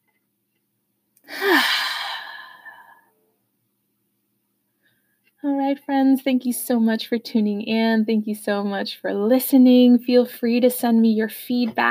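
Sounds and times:
deep audible breath during a guided breathing exercise: 1.3s - 3.0s
speech: 5.5s - 11.8s.

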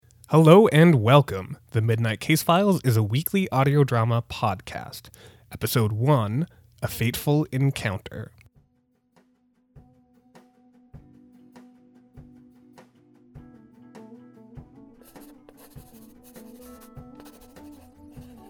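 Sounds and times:
speech: 0.3s - 8.4s
pencil scratching on a newspaper crossword: 15.0s - 18.4s.

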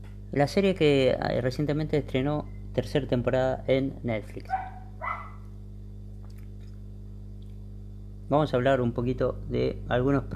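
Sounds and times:
steady low hum: 0.0s - 10.3s
speech: 0.3s - 4.7s, 8.3s - 10.3s
dog barking as it runs off: 4.5s - 5.5s.

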